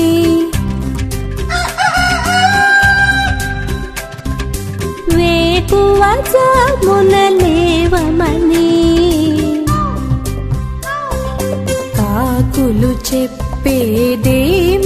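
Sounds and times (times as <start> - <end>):
busy music track with steady drums and instruments: 0.0 - 14.8
rooster crowing: 1.5 - 4.1
speech: 12.8 - 14.8.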